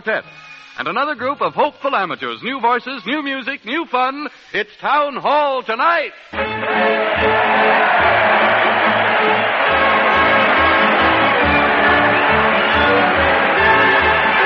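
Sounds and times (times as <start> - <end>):
speech: 0.0 - 8.2
large crowd cheering and shouting: 6.4 - 14.4.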